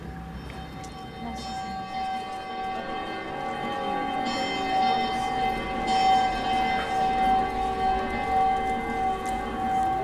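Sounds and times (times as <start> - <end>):
flowing Loire river water: 0.0 - 2.4
city church bells transformed with recorded Loire river water sounds: 0.0 - 10.0.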